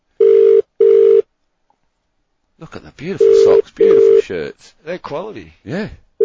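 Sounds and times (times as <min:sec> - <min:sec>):
electronic ringback tones of an outgoing phone call: 0:00.2 - 0:01.3, 0:03.2 - 0:04.2
speech: 0:02.6 - 0:06.0.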